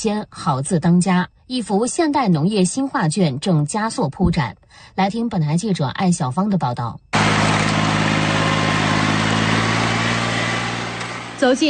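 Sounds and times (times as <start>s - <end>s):
speech: 0.0s - 7.1s, 11.4s - 11.6s
rice transplanting machine roaring in a paddy field: 7.2s - 11.6s.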